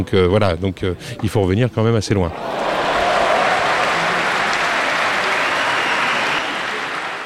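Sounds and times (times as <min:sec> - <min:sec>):
speech: 0:00.0 - 0:03.0
stadium crowd cheering: 0:02.3 - 0:07.2.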